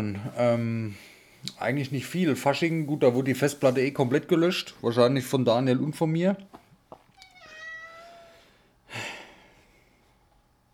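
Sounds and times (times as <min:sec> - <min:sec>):
speech: 0:00.0 - 0:06.6
cat meowing for affection: 0:07.1 - 0:08.5.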